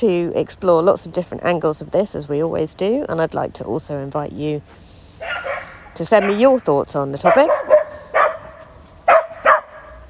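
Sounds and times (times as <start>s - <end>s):
speech: 0.0s - 7.7s
dog barking in a park: 5.2s - 6.5s, 7.2s - 10.0s.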